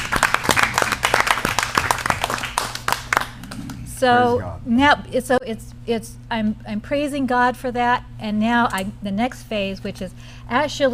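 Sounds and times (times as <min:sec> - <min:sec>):
audience applauding: 0:00.0 - 0:03.8
speech: 0:04.0 - 0:10.9.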